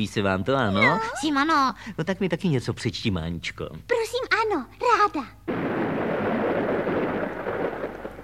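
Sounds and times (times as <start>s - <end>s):
speech: 0.0s - 5.7s
hissing rain: 5.5s - 8.2s
rumbling thunder: 5.5s - 8.2s.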